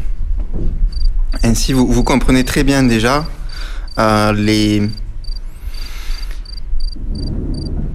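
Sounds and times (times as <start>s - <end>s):
low rumble of outdoor ambience: 0.0s - 7.9s
crickets chirping: 0.9s - 1.1s, 2.8s - 7.9s
speech: 1.4s - 3.4s, 4.0s - 5.0s.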